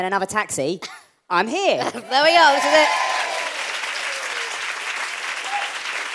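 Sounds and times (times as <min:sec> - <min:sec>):
speech: 0:00.0 - 0:03.2
live audience applause: 0:02.2 - 0:06.1.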